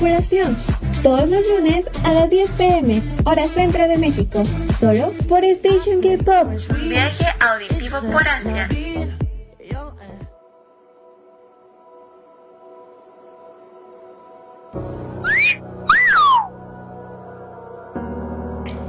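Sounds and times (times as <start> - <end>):
speech: 0.0 - 9.2
whistling sound effect played on air: 15.2 - 16.6.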